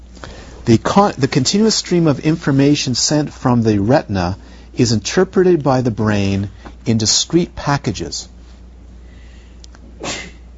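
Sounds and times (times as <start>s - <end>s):
speech: 0.2s - 8.3s
sneeze: 10.0s - 10.5s.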